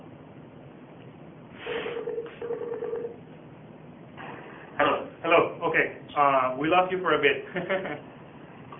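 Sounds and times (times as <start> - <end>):
narrow-band telephone line hiss: 1.6 - 3.2
electronic telephone keypad dialing tones: 1.8 - 3.2
speech: 5.8 - 8.1.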